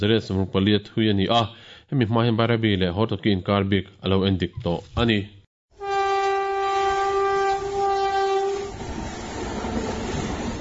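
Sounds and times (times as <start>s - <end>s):
speech: 0.0s - 5.4s
special inspection train horn blast: 5.8s - 8.8s
special inspection train rumbling and clattering on a speed trial run: 7.5s - 10.6s.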